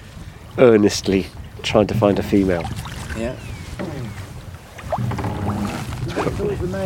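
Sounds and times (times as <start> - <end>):
soft wind: 0.0 - 6.8
speech: 0.6 - 3.5, 6.4 - 6.8
birdsong: 1.1 - 6.1
oars of a rowing boat splashing in calm loch water: 1.4 - 6.8.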